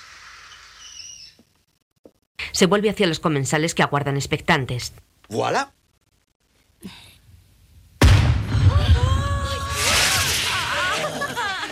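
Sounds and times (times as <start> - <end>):
fireworks display whistles: 0.0 - 1.4, 8.2 - 11.1
speech: 2.6 - 5.8
fireworks display boom: 8.0 - 11.0
fireworks display crackling spray: 8.2 - 11.4
laughter: 10.4 - 11.7.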